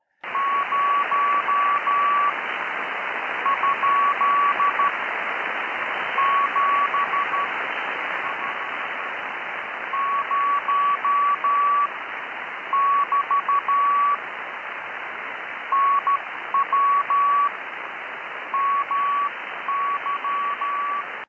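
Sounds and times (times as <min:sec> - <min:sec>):
Morse code CW radio signal tone: 0:00.2 - 0:02.4, 0:03.4 - 0:04.9, 0:06.2 - 0:07.5, 0:09.9 - 0:11.9, 0:12.7 - 0:14.2, 0:15.7 - 0:17.6, 0:18.5 - 0:21.2
steady hiss of radio band noise: 0:00.2 - 0:21.2.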